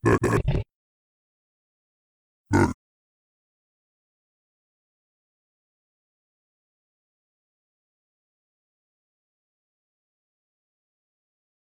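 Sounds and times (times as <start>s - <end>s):
angry zombie pig: 0.0s - 0.7s, 2.5s - 2.8s.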